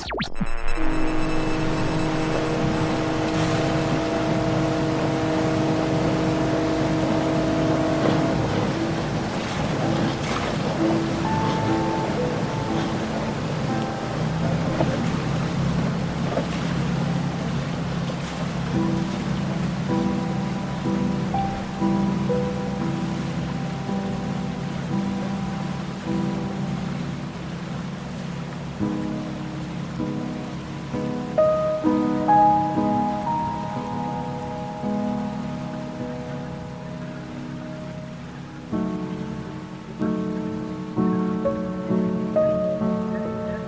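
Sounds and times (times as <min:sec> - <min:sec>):
underwater sea ambience with deep wash of water: 0:00.0 - 0:29.4
sustained underwater humming tones: 0:00.0 - 0:43.5.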